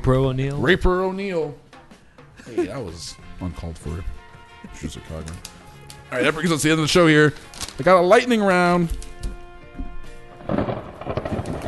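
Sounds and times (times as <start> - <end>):
speech: 0.0 - 1.6, 2.4 - 9.4
thunder rumble: 10.4 - 11.6.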